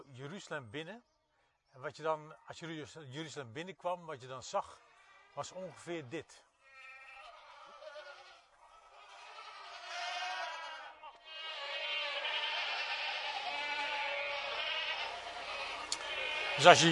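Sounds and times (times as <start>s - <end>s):
speech: 0.2s - 1.1s, 1.8s - 4.8s, 5.4s - 6.5s, 16.6s - 16.9s
large flock of sheep bleating together: 4.7s - 5.8s, 6.6s - 16.9s.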